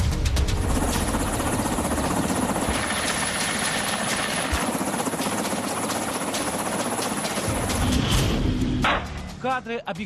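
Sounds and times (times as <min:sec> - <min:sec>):
Ka-52 attack helicopter rotor and engine noise: 0:00.2 - 0:09.4
speech: 0:09.5 - 0:10.0.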